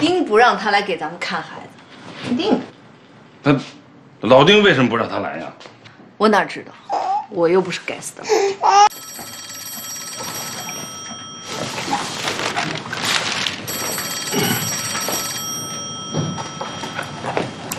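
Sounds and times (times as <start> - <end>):
speech: 0.0 - 1.6, 2.2 - 2.7, 3.4 - 9.3
telephone bell ringing: 8.9 - 12.7, 13.6 - 17.7
shuffling and movement noises in the room: 9.4 - 17.7.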